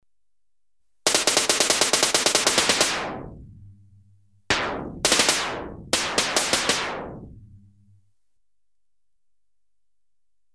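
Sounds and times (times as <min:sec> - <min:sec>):
electronically generated compressed gas gun bursts and single shots: 0:01.1 - 0:03.3, 0:04.5 - 0:07.3.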